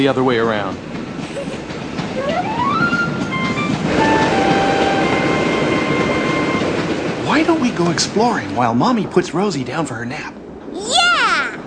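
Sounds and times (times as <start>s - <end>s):
speech: 0.0s - 1.0s, 7.4s - 11.0s
passenger train pulling out of a station rumbling on rails: 0.0s - 11.6s
passenger train motor whine: 1.2s - 8.8s.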